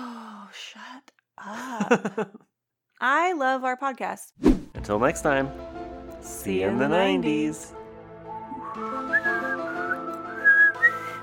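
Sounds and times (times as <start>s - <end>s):
speech: 1.4s - 7.8s
person whistling a tune: 8.5s - 11.2s.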